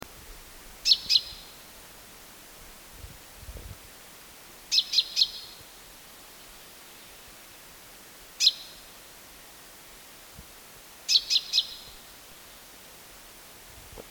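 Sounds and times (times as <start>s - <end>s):
common chaffinch Fringilla coelebs calls: 0.8s - 1.6s, 4.7s - 5.6s, 11.1s - 12.0s.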